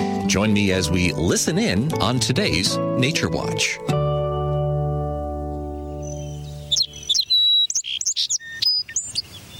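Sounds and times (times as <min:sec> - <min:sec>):
speech: 0:00.3 - 0:04.1
song sparrow song of bright chips, sharp notes and quick trills: 0:05.0 - 0:09.5.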